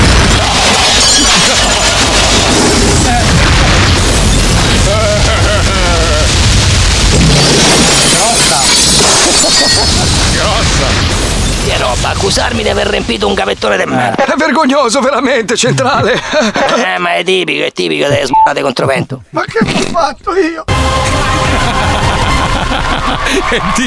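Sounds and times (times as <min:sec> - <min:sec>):
roar of shattering and crashing debris: 0:00.0 - 0:13.4
car bomb explosion under a car: 0:00.0 - 0:13.5
laughter: 0:01.2 - 0:03.8, 0:04.6 - 0:06.4, 0:15.6 - 0:17.1, 0:21.1 - 0:23.8
speech: 0:12.3 - 0:21.9, 0:22.7 - 0:23.8.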